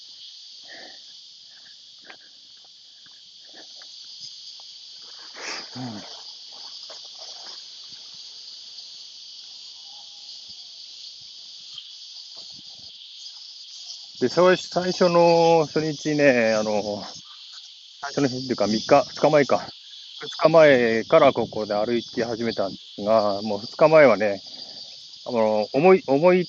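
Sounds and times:
chorus of cicadas buzzing outdoors: 0:00.0 - 0:26.4
faint rustles: 0:01.0 - 0:08.5
speech: 0:05.8 - 0:06.2, 0:14.2 - 0:17.2, 0:18.1 - 0:24.5, 0:25.2 - 0:26.4.

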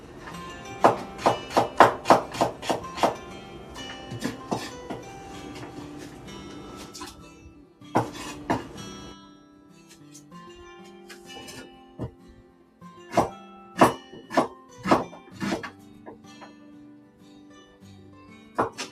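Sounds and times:
pots and utensils clattering while cooking miso soup: 0:00.0 - 0:07.2, 0:07.9 - 0:09.1, 0:11.0 - 0:12.2, 0:13.1 - 0:16.5, 0:18.6 - 0:18.8.

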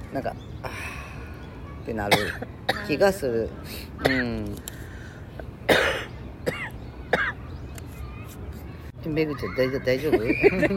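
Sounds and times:
speech: 0:00.1 - 0:00.9, 0:01.8 - 0:04.7, 0:09.1 - 0:10.7
breathy voiced sounds: 0:00.6 - 0:01.6, 0:04.6 - 0:05.5
person having a coughing fit: 0:02.1 - 0:03.0, 0:05.7 - 0:07.3.

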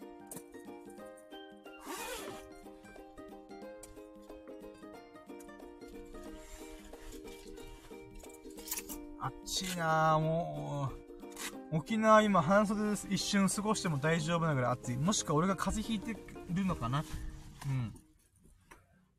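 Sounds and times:
steady music: 0:00.0 - 0:18.2
jacket rustling as it is pulled off: 0:00.4 - 0:18.7
zipper-like rasp: 0:01.8 - 0:02.5, 0:11.3 - 0:11.6
speech: 0:09.2 - 0:11.0, 0:11.7 - 0:18.0.

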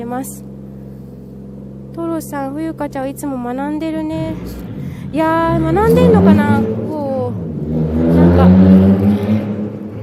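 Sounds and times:
speech: 0:00.0 - 0:00.5, 0:02.0 - 0:07.0
low droning hum: 0:00.0 - 0:10.0
car passing on the street: 0:04.1 - 0:10.0.

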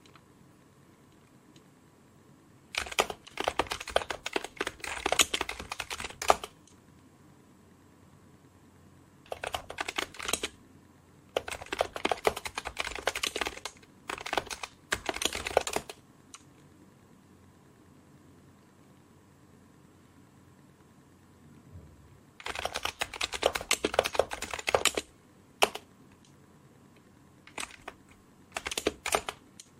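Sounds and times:
touch typing on a computer keyboard: 0:02.7 - 0:06.8, 0:09.3 - 0:10.6, 0:11.3 - 0:16.5, 0:22.4 - 0:26.3, 0:27.4 - 0:29.7.

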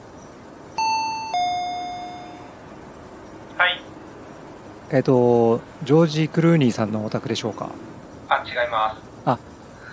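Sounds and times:
two-tone doorbell chime: 0:00.8 - 0:02.6
speech: 0:04.9 - 0:09.5.

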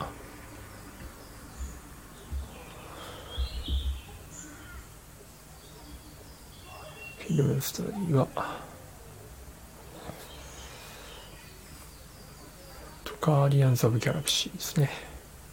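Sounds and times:
birds chirping: 0:00.0 - 0:15.5
low thumps: 0:03.3 - 0:04.1
speech: 0:07.3 - 0:08.7, 0:13.2 - 0:15.1.

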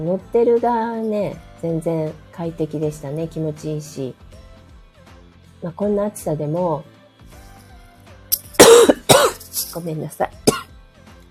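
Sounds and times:
speech: 0:00.0 - 0:04.3, 0:05.6 - 0:06.9, 0:09.6 - 0:10.5
child coughing in an air-conditioned room: 0:08.4 - 0:09.8, 0:10.4 - 0:10.7.

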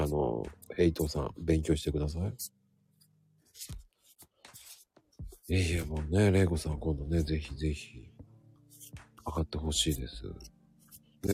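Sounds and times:
speech: 0:00.4 - 0:02.6, 0:03.6 - 0:03.8, 0:05.5 - 0:08.2, 0:09.2 - 0:10.5
paper rustling: 0:03.5 - 0:05.9.

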